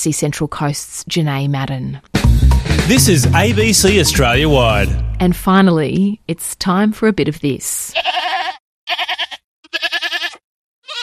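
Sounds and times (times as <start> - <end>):
speech: 0.0 - 9.9
goat bleating loudly: 7.9 - 11.0.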